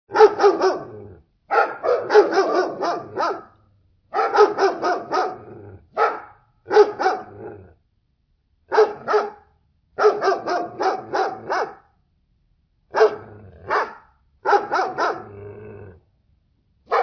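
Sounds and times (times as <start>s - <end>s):
dog barking: 0.1s - 7.5s, 8.7s - 11.9s, 12.9s - 15.4s, 16.9s - 17.0s.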